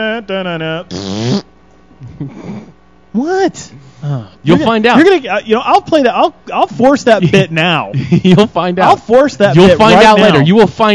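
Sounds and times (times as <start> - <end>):
speech: 0.0 - 1.4, 2.0 - 10.9
loud buzzy fart noises: 0.9 - 1.5.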